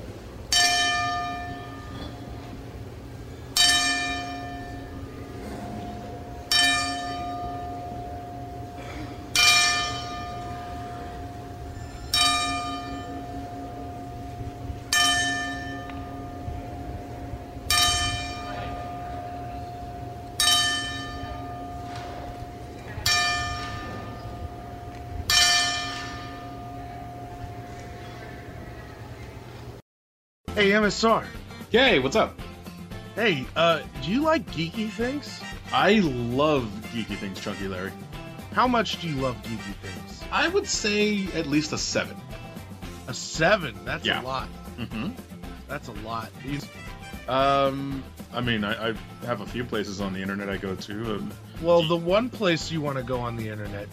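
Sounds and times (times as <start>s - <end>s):
deep church bell tolling as memorial bells: 0.5s - 2.9s, 3.5s - 28.2s
speech: 30.6s - 32.4s, 33.2s - 38.0s, 38.6s - 42.2s, 43.1s - 53.9s.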